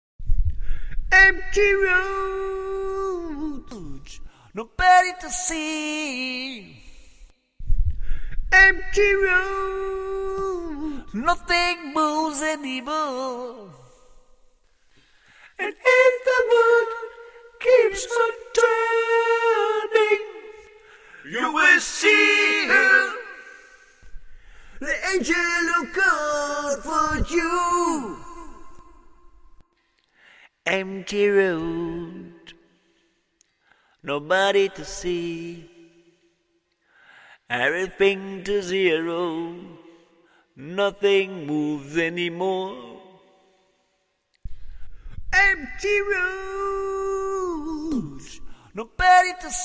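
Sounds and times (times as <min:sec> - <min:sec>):
a cappella rock vocals: 0:00.5 - 0:32.9, 0:33.9 - 0:36.2, 0:37.3 - 0:43.5, 0:44.4 - 0:49.6.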